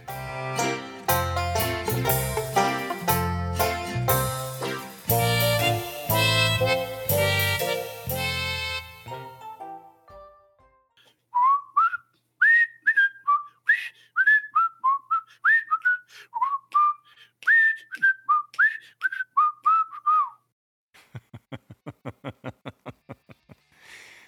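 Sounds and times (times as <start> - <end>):
instrumental music: 0.0 - 11.0
person whistling a short bouncy tune: 11.4 - 20.5
chuckling: 21.0 - 23.8.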